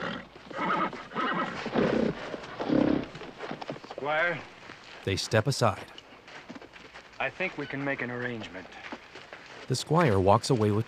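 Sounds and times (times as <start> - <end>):
horse whinnying: 0.0 - 3.2
horse hooves clopping on the ground: 0.0 - 10.8
speech: 4.1 - 6.0, 7.2 - 8.8, 9.7 - 10.8.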